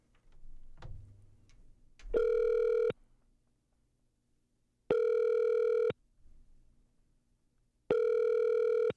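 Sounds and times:
faint handling noises: 0.0s - 2.4s
telephone ringing tone while placing a video call: 2.2s - 2.9s, 4.9s - 5.9s, 7.9s - 8.9s.

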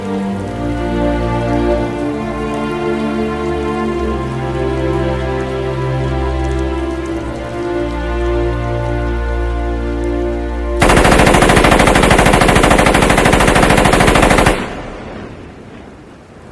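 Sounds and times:
soft sustained film music: 0.0s - 16.5s
machine gun fire in a film scene: 10.8s - 15.2s.

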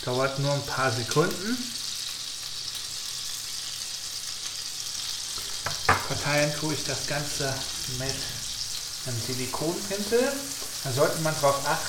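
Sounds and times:
speech: 0.0s - 1.8s, 6.1s - 8.4s, 9.0s - 11.8s
tablespoon of butter melting and sizzling in a pan inside an oven: 0.0s - 11.8s.

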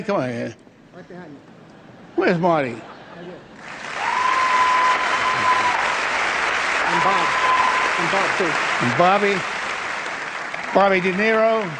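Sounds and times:
speech: 0.0s - 1.6s, 2.2s - 3.8s, 6.9s - 9.6s, 10.7s - 11.7s
large audience applauding at an awards ceremony: 3.6s - 11.7s.

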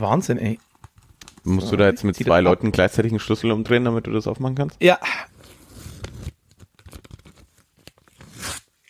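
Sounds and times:
speech: 0.0s - 0.7s, 1.4s - 5.3s
sealed paper envelope being torn open: 5.4s - 8.8s.

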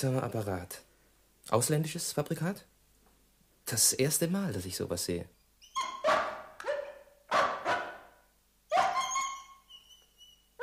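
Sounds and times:
speech: 0.0s - 0.9s, 1.5s - 2.7s, 3.7s - 6.0s
dog howling: 8.7s - 10.0s.

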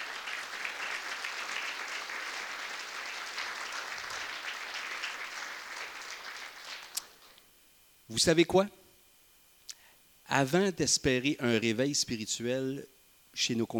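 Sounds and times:
church congregation applauding: 0.0s - 7.4s
speech: 8.1s - 8.8s, 10.3s - 13.7s.

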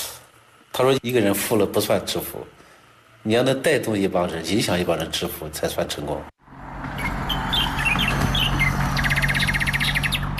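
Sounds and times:
speech: 0.8s - 2.6s, 3.2s - 6.3s
small birds chirping in trees in the early morning at a village: 7.0s - 10.3s.

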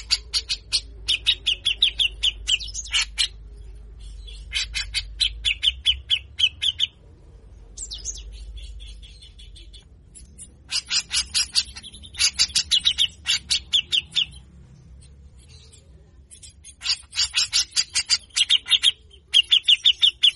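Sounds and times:
grey-cheeked bulbul chattering: 0.0s - 20.3s.

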